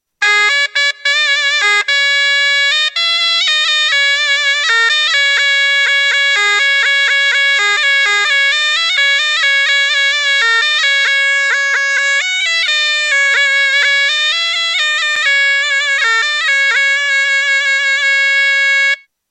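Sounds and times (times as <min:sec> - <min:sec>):
zurna playing: 0:00.2 - 0:19.1.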